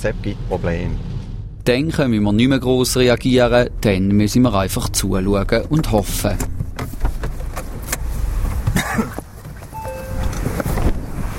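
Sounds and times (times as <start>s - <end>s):
speech: 0.0s - 6.9s
car rumbling to a stop at a stream in rainy weather: 0.0s - 11.3s
clunks and rustling of someone getting out of a car: 4.9s - 11.3s
wind noise over the microphone: 9.6s - 11.3s
brief electronic beep: 9.7s - 10.5s.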